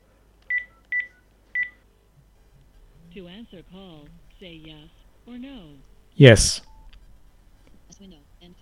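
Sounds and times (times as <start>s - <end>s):
electronic keypad beeps from a landline phone being dialed: 0.5s - 1.8s
speech: 3.2s - 6.7s, 8.0s - 8.6s.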